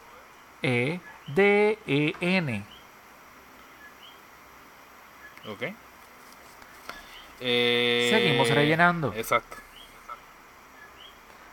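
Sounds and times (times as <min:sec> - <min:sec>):
soft hiss: 0:00.0 - 0:11.5
speech: 0:00.6 - 0:02.7, 0:05.5 - 0:05.8, 0:07.4 - 0:09.6
small bird chirping: 0:02.6 - 0:02.9, 0:03.6 - 0:04.3, 0:05.1 - 0:05.6, 0:06.7 - 0:07.4, 0:09.6 - 0:11.3.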